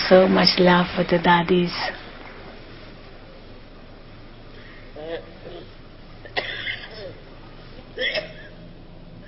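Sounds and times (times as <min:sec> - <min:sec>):
speech: 0:00.1 - 0:02.0
person coughing: 0:06.3 - 0:07.2, 0:08.0 - 0:08.6.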